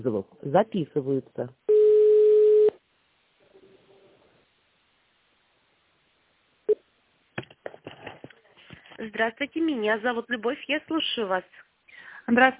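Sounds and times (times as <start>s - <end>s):
speech: 0.0s - 1.8s, 9.0s - 12.5s
telephone ringing tone while a call is forwarded to a call center: 1.7s - 2.8s.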